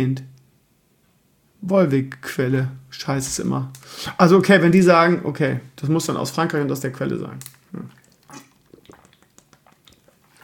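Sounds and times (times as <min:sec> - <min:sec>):
speech: 0:00.0 - 0:00.3, 0:01.6 - 0:08.4
loud gulp of bottled mineral water: 0:07.4 - 0:10.4
swallowing clicks: 0:07.4 - 0:10.4
wet slurping sips of bottled mineral water: 0:07.4 - 0:10.4.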